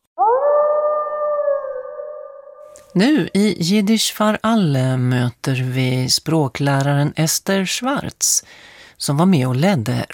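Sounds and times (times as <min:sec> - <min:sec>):
wolf howling: 0:00.2 - 0:02.9
speech: 0:02.9 - 0:10.1.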